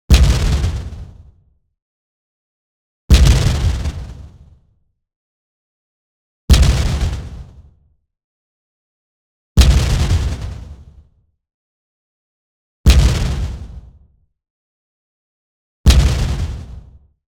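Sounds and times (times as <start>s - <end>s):
short crunchy white noise and sine explosion: 0.1s - 1.2s, 3.1s - 4.2s, 6.5s - 7.5s, 9.6s - 10.7s, 12.9s - 13.7s, 15.9s - 16.8s.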